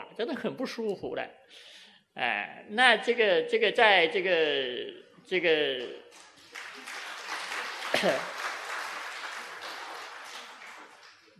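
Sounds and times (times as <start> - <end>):
speech: 0.2 - 6.9, 8.0 - 8.4
audience applause during a lecture: 6.2 - 11.3.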